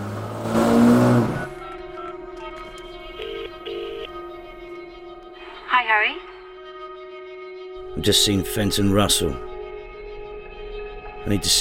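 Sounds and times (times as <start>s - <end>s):
car engine revving and roaring off outside a prison: 0.0s - 1.7s
speech: 8.0s - 9.5s, 11.2s - 11.5s.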